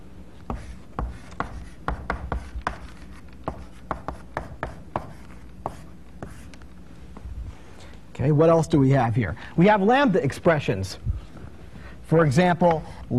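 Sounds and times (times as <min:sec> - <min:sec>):
writing on a board during a lecture: 0:00.5 - 0:06.6, 0:12.7 - 0:13.1
speech: 0:08.2 - 0:11.1, 0:12.1 - 0:13.1.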